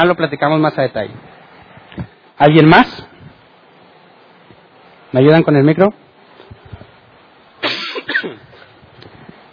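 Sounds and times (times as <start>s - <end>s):
speech: 0.0s - 1.4s, 2.0s - 3.1s, 5.1s - 6.0s
person coughing: 7.6s - 8.6s
harsh throat clearing: 7.6s - 8.7s.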